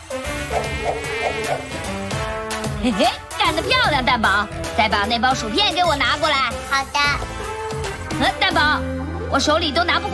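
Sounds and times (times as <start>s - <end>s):
housefly buzzing: 0.0s - 4.8s
speech: 2.8s - 7.3s, 8.2s - 10.1s.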